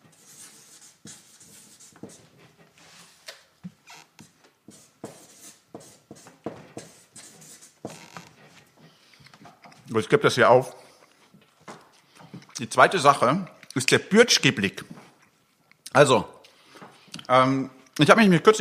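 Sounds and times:
chalk scratching across a blackboard as someone writes: 0.0 - 3.2, 4.2 - 8.6
speech: 9.9 - 10.8, 12.6 - 15.0, 15.9 - 16.3, 17.3 - 18.6.

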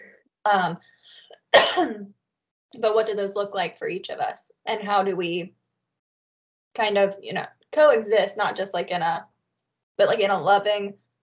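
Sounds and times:
speech: 0.4 - 5.6, 6.8 - 9.3, 10.0 - 11.0
person clearing throat from a tickle in the throat: 1.6 - 2.0
person coughing from a tickle in the throat: 1.6 - 2.0.

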